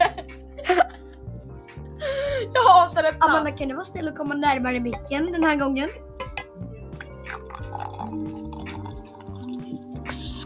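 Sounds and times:
speech: 2.4s - 6.1s
liquid dripping and trickling: 7.0s - 10.4s.

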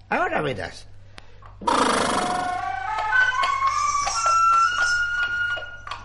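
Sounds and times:
speech: 0.1s - 0.9s, 1.6s - 2.3s
flute playing: 2.0s - 6.0s.

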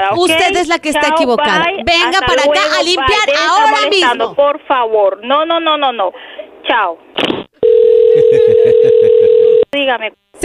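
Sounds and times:
speech: 0.1s - 7.4s, 9.7s - 10.4s
telephone dial tone after hang-up: 7.6s - 9.7s
laughter: 8.1s - 8.9s.

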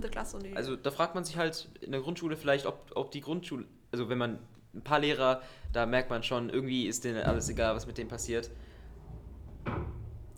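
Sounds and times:
speech: 0.0s - 8.7s
dull knock: 5.6s - 6.4s, 7.1s - 10.3s.

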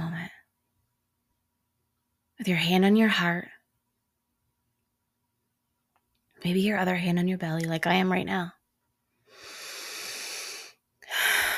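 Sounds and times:
speech: 2.4s - 3.6s, 6.4s - 8.6s
deep breath: 9.2s - 11.5s.

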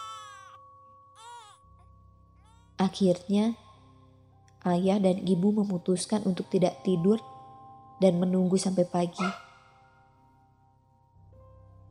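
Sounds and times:
baby crying: 0.0s - 0.6s, 1.2s - 1.6s, 9.2s - 9.5s
speech: 2.8s - 3.6s, 4.6s - 7.3s, 8.0s - 9.4s.

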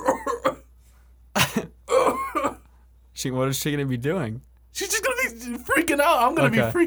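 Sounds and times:
person imitating coughing: 0.0s - 0.7s, 1.4s - 2.7s
speech: 3.2s - 6.8s.

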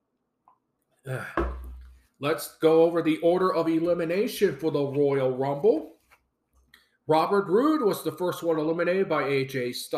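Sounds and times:
speech: 1.0s - 1.5s, 2.2s - 5.9s, 7.1s - 9.9s
dull knock of a cup set down: 1.4s - 2.0s.

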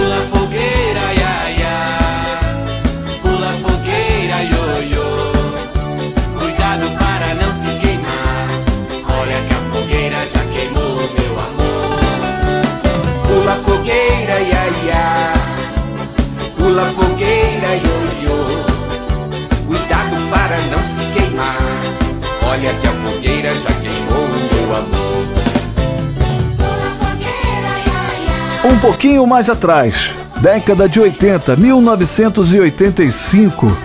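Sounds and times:
lively children's festa junina song with bouncy dance rhythm: 0.0s - 33.8s
speech: 28.8s - 33.8s.

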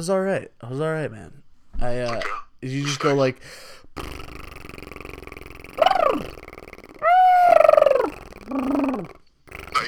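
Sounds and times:
speech: 0.0s - 4.5s
low buzzing vocal drone imitating a didgeridoo: 4.0s - 9.8s
voice making warbling bird-like whoops and yelps: 5.8s - 6.4s, 7.0s - 9.2s.

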